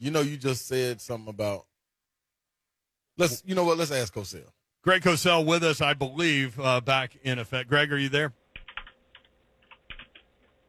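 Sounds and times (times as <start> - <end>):
speech: 0.0 - 1.7, 3.2 - 8.4
typing on a computer keyboard: 8.6 - 10.6.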